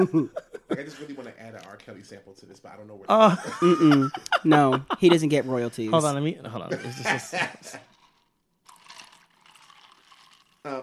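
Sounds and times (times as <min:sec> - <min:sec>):
laughter: 0:00.0 - 0:07.8
speech: 0:00.0 - 0:07.9, 0:10.6 - 0:10.8
fizzy drink being poured: 0:07.8 - 0:10.8.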